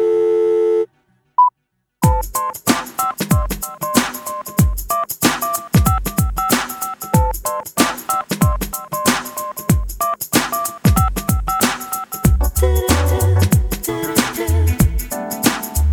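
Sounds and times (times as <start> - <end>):
short beep: 0.0 - 1.5
telephone busy tone after a call is hung up: 0.0 - 1.5
loud music with heavy drum hits: 2.0 - 15.9.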